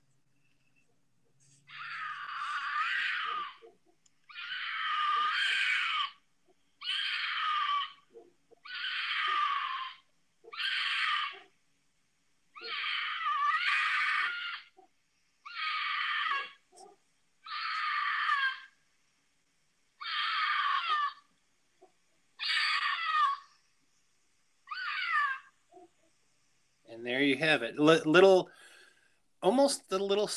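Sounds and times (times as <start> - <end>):
cougar screaming in harsh raspy wails: 1.7 - 6.2, 6.8 - 11.6, 12.5 - 18.8, 20.0 - 21.3, 22.4 - 23.6, 24.7 - 25.9
speech: 27.0 - 28.6, 29.4 - 30.3.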